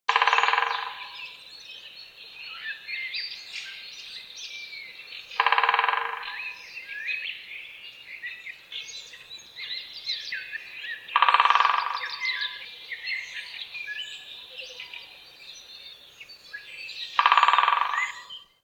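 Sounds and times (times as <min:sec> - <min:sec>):
great spotted woodpecker voice: 0:00.1 - 0:01.4, 0:05.0 - 0:07.5, 0:08.1 - 0:18.5.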